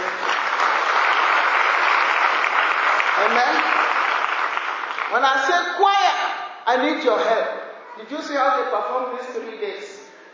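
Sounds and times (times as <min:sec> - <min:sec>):
audience clapping for the Lord: 0:00.0 - 0:05.5
speech: 0:03.2 - 0:04.0, 0:05.1 - 0:10.0.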